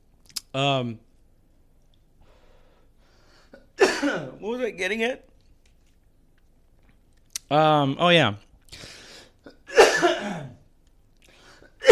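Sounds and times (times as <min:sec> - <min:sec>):
speech: 0:00.5 - 0:01.1, 0:04.0 - 0:05.3, 0:07.5 - 0:08.9
quiet breathing: 0:02.2 - 0:03.6, 0:08.7 - 0:09.4, 0:11.2 - 0:11.8
person coughing: 0:03.6 - 0:04.4, 0:09.4 - 0:10.6, 0:11.6 - 0:11.8.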